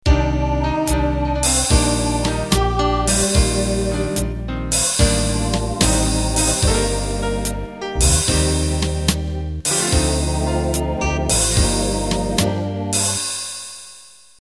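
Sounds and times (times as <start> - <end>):
slow jazz intro in MIDI: 0.1 - 13.3.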